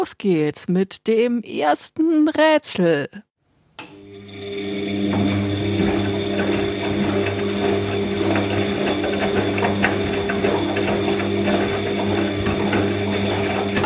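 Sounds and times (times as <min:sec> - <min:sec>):
speech: 0:00.0 - 0:03.3
washing machine running with motor hum, clicking and sloshing: 0:03.8 - 0:13.8.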